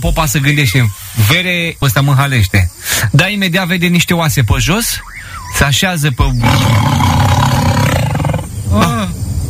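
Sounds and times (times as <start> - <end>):
speech: 0.0 - 7.2
tiger charging in a jungle roaring and growling: 6.3 - 8.6.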